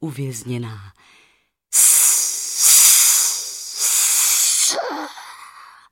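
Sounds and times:
speech: 0:00.0 - 0:01.1
flames hissing as water douses them: 0:01.8 - 0:05.1.

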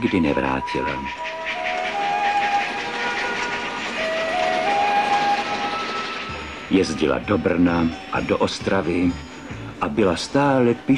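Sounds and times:
speech: 0:00.0 - 0:01.7, 0:06.7 - 0:10.9
continuous rolling rumble of a steam train pulling out of Smíchov station: 0:00.0 - 0:10.9
steam locomotive whistling as it pulls out of Smíchov station: 0:01.0 - 0:07.6.

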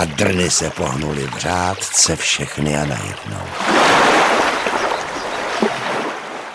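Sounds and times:
speech: 0:00.0 - 0:04.6
water wave rushing down a stream from a broken small dam: 0:01.3 - 0:06.5.

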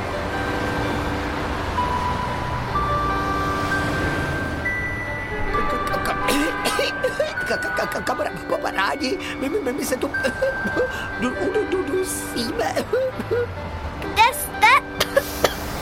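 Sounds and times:
busy street traffic with cars rushing past: 0:00.0 - 0:08.3, 0:09.0 - 0:15.8
car engines droning in busy street traffic: 0:00.0 - 0:15.8
speech: 0:07.5 - 0:13.9.

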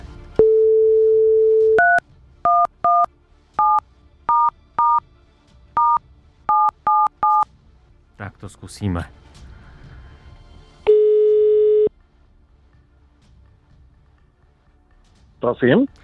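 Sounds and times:
electronic keypad beeps of a number being dialed: 0:00.4 - 0:05.0, 0:05.8 - 0:07.4, 0:10.9 - 0:11.9
steady telephone tone: 0:00.4 - 0:05.0, 0:10.9 - 0:11.9
speech: 0:08.4 - 0:09.4, 0:15.4 - 0:16.0.

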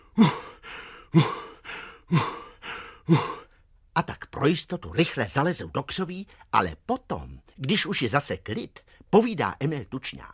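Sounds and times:
voice imitating loud heavy huffing and panting: 0:00.0 - 0:03.6
speech: 0:04.4 - 0:10.3.

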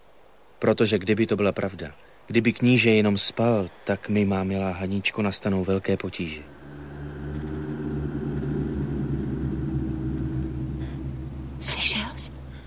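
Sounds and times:
speech: 0:00.6 - 0:06.6
distant thunder rumbling in the mountains: 0:06.3 - 0:12.6.

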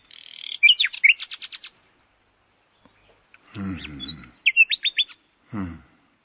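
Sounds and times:
nightingale singing: 0:00.0 - 0:01.8, 0:02.6 - 0:05.4.

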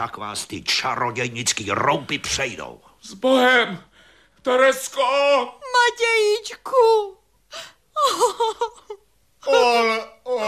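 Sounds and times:
speech: 0:00.0 - 0:10.4
woman gasping, sobbing and wailing: 0:07.6 - 0:10.4.

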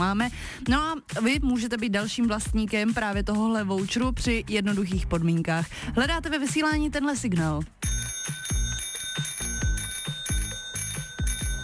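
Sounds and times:
speech: 0:00.0 - 0:08.0
bicycle bell ringing: 0:07.8 - 0:11.6.

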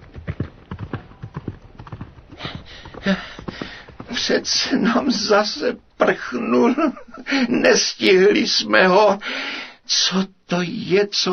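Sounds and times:
knight's horse hooves galloping out through a gate: 0:00.0 - 0:06.3
horse whinny: 0:01.0 - 0:04.7
speech: 0:03.0 - 0:03.4, 0:04.2 - 0:11.3.

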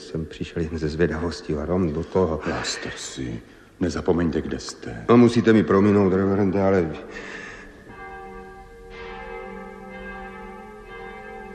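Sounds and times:
church bells pealing: 0:00.0 - 0:01.9, 0:05.6 - 0:11.5
speech: 0:00.1 - 0:07.4.

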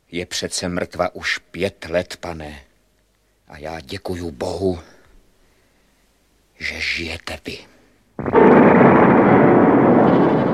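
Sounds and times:
speech: 0:00.1 - 0:02.7, 0:03.5 - 0:04.9, 0:06.6 - 0:07.7
heavy roar of rumbling debris from a collapsing castle tower: 0:08.2 - 0:10.5
massive explosion: 0:08.2 - 0:10.5.

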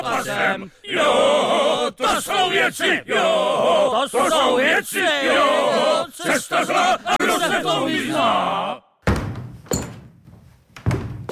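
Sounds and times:
speech: 0:00.0 - 0:08.9
heavy wooden thumps knocking on a floor: 0:09.0 - 0:11.3.

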